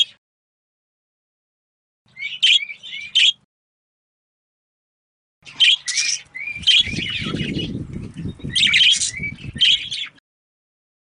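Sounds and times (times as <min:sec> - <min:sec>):
female budgerigar giving harsh scratchy chirps: 0:02.1 - 0:03.4, 0:05.5 - 0:10.2.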